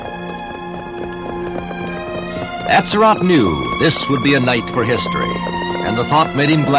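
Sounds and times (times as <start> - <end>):
ridden horse hooves trotting on a hard street: 0.0 - 6.7
sustained droning musical background: 0.0 - 6.7
speech: 2.7 - 6.7.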